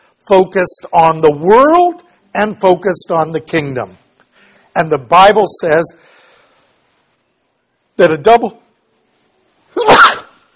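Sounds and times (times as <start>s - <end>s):
speech: 0.3s - 4.0s, 4.8s - 6.2s, 8.0s - 8.6s
person sneezing during a sermon: 9.8s - 10.4s.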